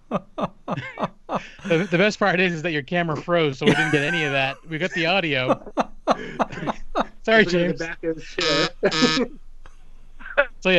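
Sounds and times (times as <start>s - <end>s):
speech: 0.1s - 6.4s, 7.2s - 9.4s
laughter: 0.1s - 9.2s
short loud harsh rasping buzzer blast: 8.4s - 9.2s.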